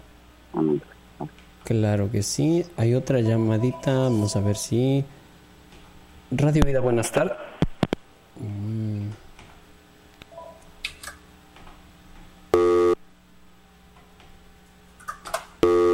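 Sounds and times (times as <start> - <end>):
speech: 0.8 - 5.2, 6.3 - 7.5
telephone busy tone after a dropped radio call-in: 12.6 - 13.0, 15.6 - 15.9.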